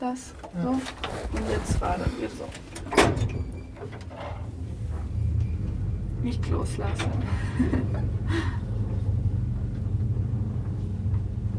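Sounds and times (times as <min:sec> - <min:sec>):
speech: 0:00.0 - 0:04.6, 0:06.2 - 0:08.6
low rumbling scraping drag of elevator door: 0:00.7 - 0:02.7, 0:04.1 - 0:11.5
heavy metal inner door of a cramped old elevator sliding and rattling shut: 0:02.6 - 0:06.1
laughter: 0:07.3 - 0:08.6.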